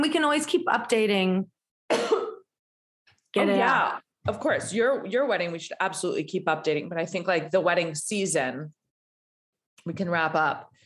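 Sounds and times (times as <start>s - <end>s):
speech: 0.0s - 2.2s, 3.3s - 8.8s, 9.8s - 10.8s
woman with allergies cough-sneeze: 1.9s - 2.5s.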